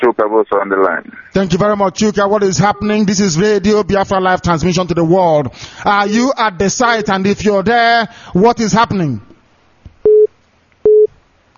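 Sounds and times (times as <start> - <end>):
speech: 0.1 - 9.3
telephone busy signal after dropped call: 10.0 - 11.1.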